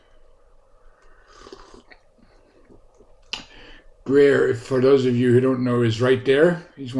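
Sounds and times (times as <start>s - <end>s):
airy intake of breath: 0.9s - 2.8s
slurping sip of Barry's tea from a new mug: 1.2s - 2.0s
speech: 4.1s - 6.9s.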